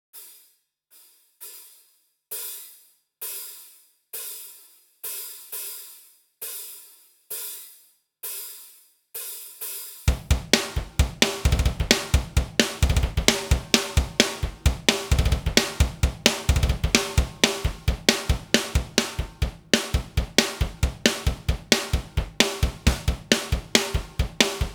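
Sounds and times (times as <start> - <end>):
drums: 4.2 - 24.7
instrumental riff: 10.1 - 24.7.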